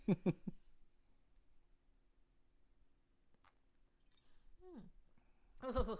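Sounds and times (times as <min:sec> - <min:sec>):
speech: 0:00.1 - 0:00.6, 0:05.6 - 0:05.9
wet mouth and swallowing noises: 0:03.3 - 0:04.4
person sipping ouzo from a bottle: 0:03.4 - 0:04.5.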